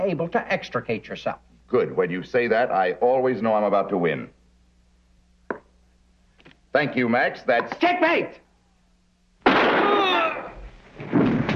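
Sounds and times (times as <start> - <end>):
speech: 0.0 - 4.4, 6.8 - 8.4
gunshot: 9.4 - 10.3.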